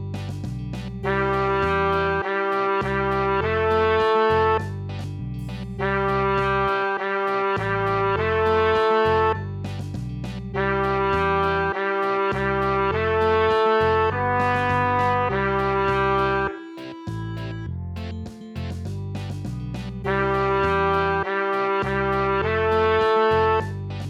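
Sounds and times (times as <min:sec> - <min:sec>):
reggae music for trumpet: 0:00.2 - 0:17.7, 0:18.6 - 0:24.0.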